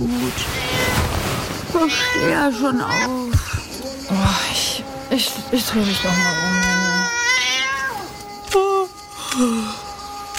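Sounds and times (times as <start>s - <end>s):
speech: 0.0s - 0.7s, 1.7s - 6.8s, 9.4s - 9.8s
cat meowing insistently: 0.3s - 1.2s, 1.8s - 3.3s, 5.7s - 8.1s.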